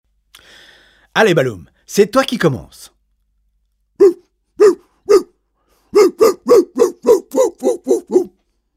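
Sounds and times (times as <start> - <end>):
speech: 1.2 - 3.0, 4.0 - 4.8
dog barking loudly: 4.0 - 8.4.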